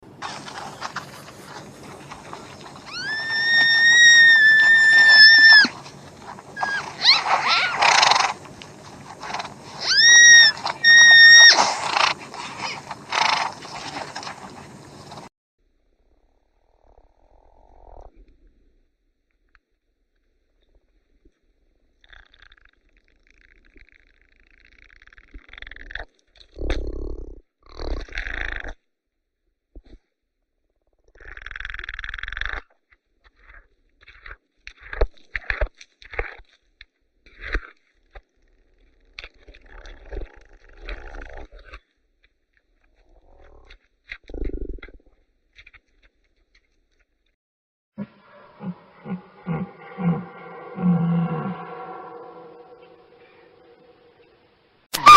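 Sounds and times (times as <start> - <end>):
Arabian oryx calling: 0.2 - 15.2, 48.0 - 55.1.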